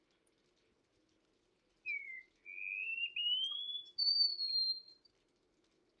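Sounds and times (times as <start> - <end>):
wallcreeper singing slow thin rising whistles: 1.9 - 4.9.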